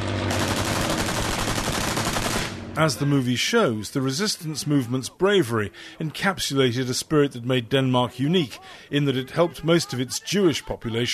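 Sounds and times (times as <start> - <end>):
machine-gun fire from a German warplane strafing fighters: 0.0 - 2.8
speech: 2.8 - 11.1.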